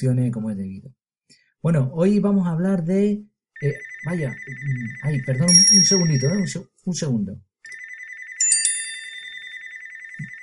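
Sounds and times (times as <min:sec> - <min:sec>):
speech: 0:00.0 - 0:07.8
SMS and WhatsApp notification tones: 0:05.5 - 0:06.5, 0:08.4 - 0:10.4
home landline telephone ringing with electronic trill: 0:05.5 - 0:06.5, 0:07.7 - 0:10.4.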